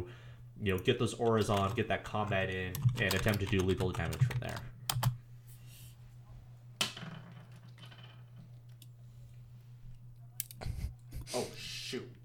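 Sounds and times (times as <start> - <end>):
speech: 0.0 - 4.7
steady low electrical hum: 0.0 - 12.2
keyboard keys being mashed by cat: 2.7 - 5.1.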